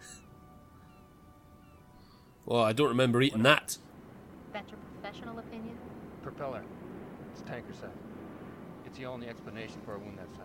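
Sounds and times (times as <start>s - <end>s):
seagull crying: 0.0s - 2.3s
low rumble: 0.0s - 10.4s
speech: 2.5s - 3.9s, 4.6s - 6.8s, 7.4s - 8.1s, 8.9s - 10.4s.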